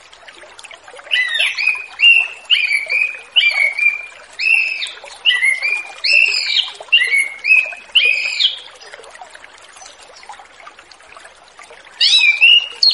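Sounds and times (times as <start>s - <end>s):
continuous hiss: 0.0s - 12.9s
Orange-headed thrush giving loud whistled phrases: 1.1s - 8.6s, 12.0s - 12.9s.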